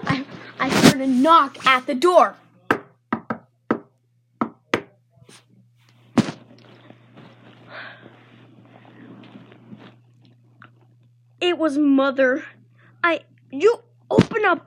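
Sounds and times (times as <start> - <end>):
faint room hum: 0.0 - 14.6
speech: 0.6 - 2.4, 11.6 - 14.6
sharp uneven knocks on a door: 2.7 - 4.9.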